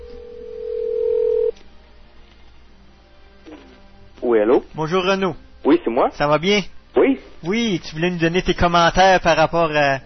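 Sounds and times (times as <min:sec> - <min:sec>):
steady electronic tone of a telephone call being placed: 0:00.2 - 0:01.5
speech: 0:04.3 - 0:10.0.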